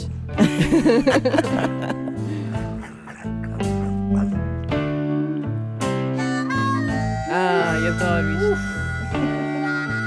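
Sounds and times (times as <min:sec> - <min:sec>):
strummed accompaniment: 0:00.0 - 0:10.0
speech: 0:00.3 - 0:02.0
laughter: 0:00.4 - 0:04.3
harmonica playing sustained reedy notes: 0:06.0 - 0:10.0.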